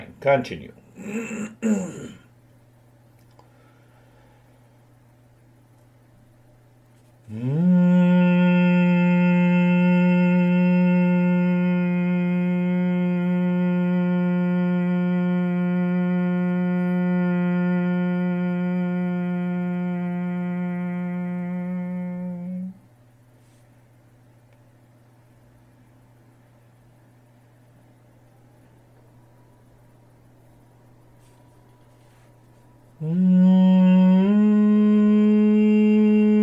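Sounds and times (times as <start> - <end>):
speech: 0.2 - 2.2
person humming with teeth held together: 0.9 - 2.3, 7.2 - 22.9, 33.0 - 36.4
breath: 3.4 - 4.8.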